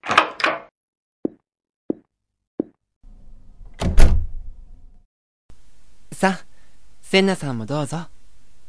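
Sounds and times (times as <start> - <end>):
sharp taps: 1.3 - 2.8
door opening with a clatter: 3.7 - 4.3
door swinging shut with a low rumble and thud: 3.7 - 4.4
speech: 6.2 - 6.5, 7.1 - 8.1.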